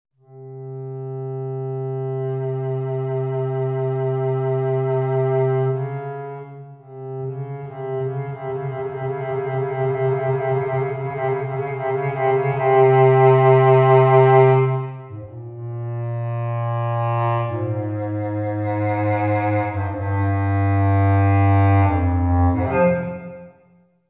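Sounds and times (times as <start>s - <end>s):
software contrabass clarinet: 0.2s - 23.8s.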